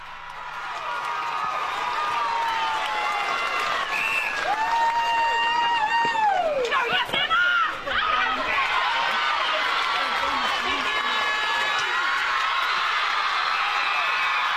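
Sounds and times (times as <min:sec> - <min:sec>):
netball players screaming and cheering celebrating a grand final win: 0:00.0 - 0:14.5
general crowd chatter: 0:05.9 - 0:14.1.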